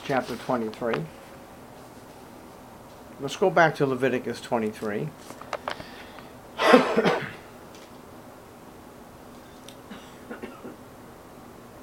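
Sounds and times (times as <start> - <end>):
speech: 0.1 - 1.2, 3.2 - 5.4, 6.7 - 7.2
person clearing throat: 6.6 - 7.5, 9.9 - 10.8
person coughing: 6.6 - 7.5, 9.9 - 10.8.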